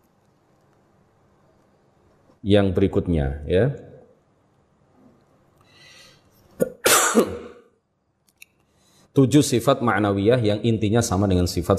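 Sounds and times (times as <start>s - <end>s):
speech: 2.4s - 3.9s, 9.2s - 11.7s
person coughing: 6.6s - 7.7s.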